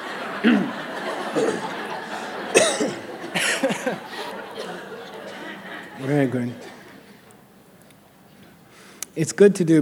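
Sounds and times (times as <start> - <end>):
laughter: 0.0 - 9.0
speech: 0.4 - 0.8, 6.1 - 6.7, 9.2 - 9.7
person coughing to clear the throat: 2.6 - 3.0.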